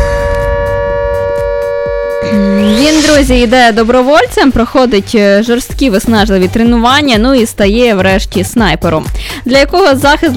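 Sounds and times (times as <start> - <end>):
air raid siren: 0.0 - 5.0
low thumping pulses: 0.0 - 7.0
speech: 3.2 - 10.3.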